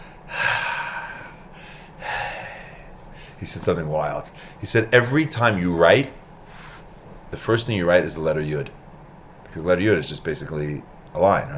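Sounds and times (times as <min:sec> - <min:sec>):
person taking a deep breath: 0:00.0 - 0:03.4
speech: 0:03.4 - 0:06.2, 0:07.3 - 0:08.8, 0:09.5 - 0:11.5.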